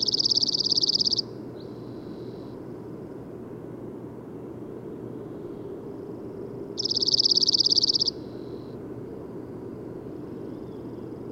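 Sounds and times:
bird trill of rapid evenly pulsed high notes: 0:00.0 - 0:02.6, 0:06.8 - 0:08.7
low steady rumble: 0:00.0 - 0:11.3.

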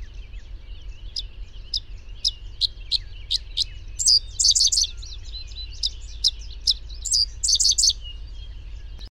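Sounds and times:
bird chirping: 0:00.0 - 0:09.0
constant low hum: 0:00.0 - 0:09.0.

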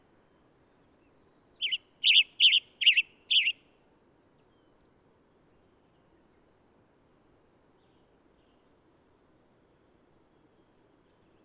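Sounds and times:
bird song with loud warbled chirping phrases: 0:01.6 - 0:03.5.

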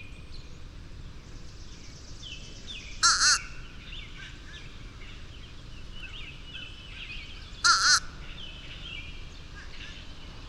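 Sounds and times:
steady background hiss: 0:00.0 - 0:10.4
bird giving a single short harsh call: 0:03.0 - 0:04.4, 0:07.6 - 0:08.3.

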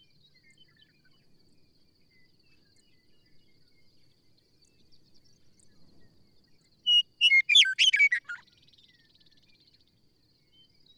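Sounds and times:
bird chirping and twittering: 0:06.9 - 0:08.4.

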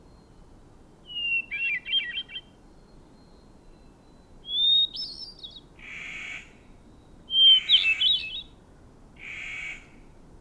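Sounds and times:
bird song phrase with falling whistle and rapid rolling warble: 0:01.0 - 0:08.6.

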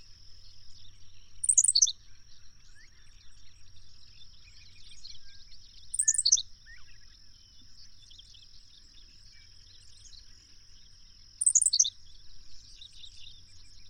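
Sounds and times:
bird song: 0:00.0 - 0:13.8.

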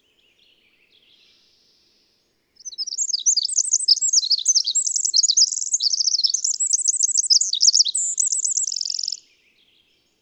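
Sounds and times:
bird song with rapid high twittering and buzzy trill: 0:02.6 - 0:09.2.

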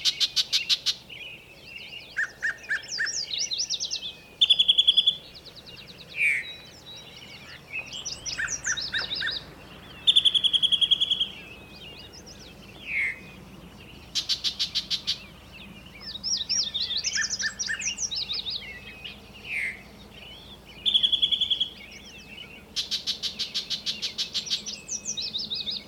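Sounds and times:
birdsong: 0:00.0 - 0:25.8.

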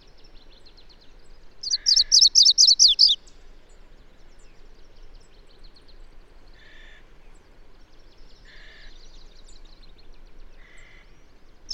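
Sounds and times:
bird song of sharp high twittering notes slurring downward: 0:01.6 - 0:03.2.

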